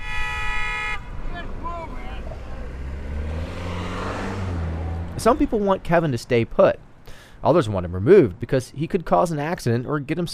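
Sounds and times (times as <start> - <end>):
loud sustained car horn blaring: 0.0 - 1.5
brief higher calls: 0.0 - 2.7
steady low rumble of idling traffic: 0.0 - 10.3
speech: 5.2 - 6.8, 7.4 - 10.3.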